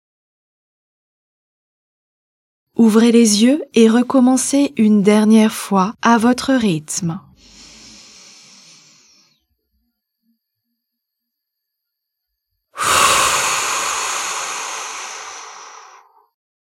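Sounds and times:
speech: 2.8s - 7.3s
person breathing slowly during a relaxation exercise: 7.4s - 9.5s, 12.8s - 16.4s.

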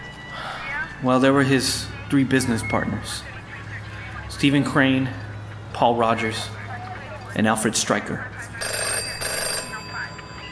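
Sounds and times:
dense busy noise: 0.0s - 10.5s
speech: 1.0s - 3.3s, 4.4s - 6.6s, 7.4s - 8.7s
home telephone ringing with an electronic trill: 8.4s - 10.5s.

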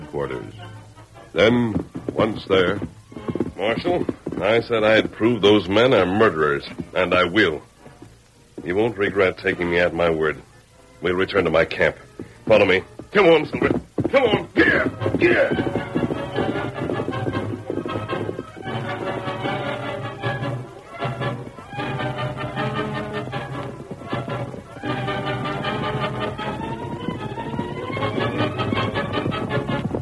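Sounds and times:
galloping hoofbeats of ridden horses: 0.0s - 30.0s
speech: 0.1s - 3.0s, 3.6s - 7.7s, 8.6s - 15.9s
loud dramatic orchestral music: 14.7s - 30.0s.

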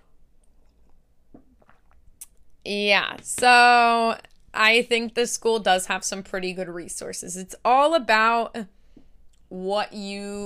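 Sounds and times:
coffee being sipped from a cup: 0.6s - 2.4s
speech: 2.6s - 8.8s, 9.5s - 10.4s.

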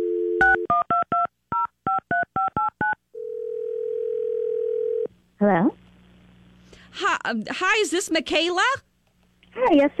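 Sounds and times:
steady continuous telephone tone: 0.0s - 5.1s
speech: 5.4s - 5.8s, 6.9s - 8.9s, 9.6s - 9.9s.

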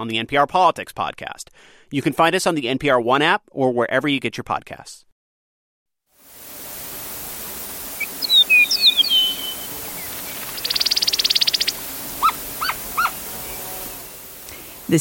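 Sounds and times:
speech: 0.0s - 5.1s
steady hiss: 6.2s - 14.9s
Eastern Meadowlark song: 6.6s - 14.9s.

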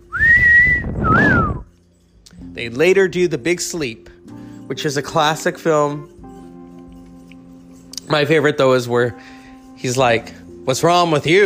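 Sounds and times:
person whistling: 0.0s - 1.7s
speech: 2.6s - 4.1s, 4.7s - 6.2s, 8.1s - 11.4s.

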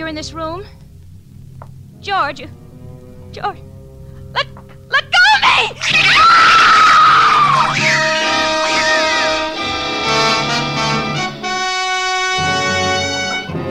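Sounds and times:
speech: 0.1s - 0.8s, 2.0s - 2.6s, 3.3s - 3.7s, 4.4s - 5.0s
woman screaming high-pitched: 4.4s - 9.7s
dramatic orchestral music: 5.8s - 13.6s.

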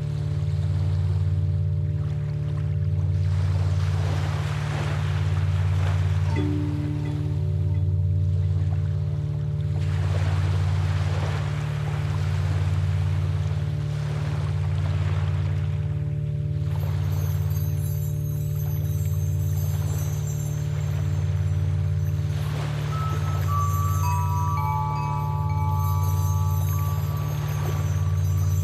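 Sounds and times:
deep steady hum throbbing in a slow regular pulse: 0.0s - 28.6s
ocean water washing and splashing in soft surges: 0.1s - 28.6s
thin high ringing tones: 6.2s - 8.4s, 16.6s - 28.6s
clear sustained notes in a stepped sequence: 6.2s - 9.6s, 16.2s - 28.6s.

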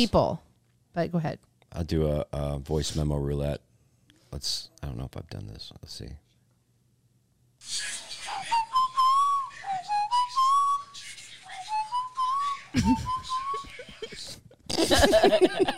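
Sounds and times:
speech: 0.0s - 0.4s, 1.0s - 3.7s, 4.3s - 6.2s, 7.6s - 8.0s, 12.7s - 13.2s, 14.7s - 15.7s
person whistling a tune recorded as a voice memo: 8.5s - 11.0s, 11.7s - 13.8s
laughter: 12.5s - 15.7s.

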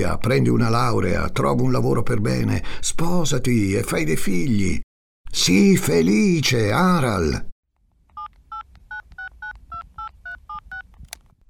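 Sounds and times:
speech: 0.0s - 7.5s
touch-tone beeps of a phone number being dialed: 8.2s - 10.9s.

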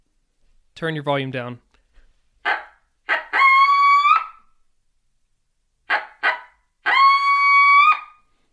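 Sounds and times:
speech: 0.8s - 1.6s
coyote-style locator call with sharp barks and tonal howl: 2.4s - 4.5s, 5.9s - 8.3s.

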